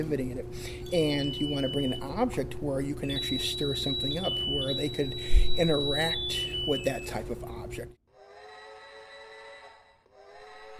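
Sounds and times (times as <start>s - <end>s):
speech: 0.0s - 8.0s
1986 toy model train steam-whistle sound effect: 3.0s - 6.0s.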